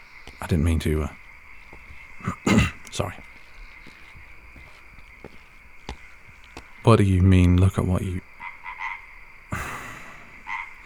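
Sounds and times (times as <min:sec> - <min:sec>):
frog croaking while held by a person: 0:00.0 - 0:10.8
speech: 0:00.4 - 0:01.2, 0:03.0 - 0:03.3, 0:06.8 - 0:08.2.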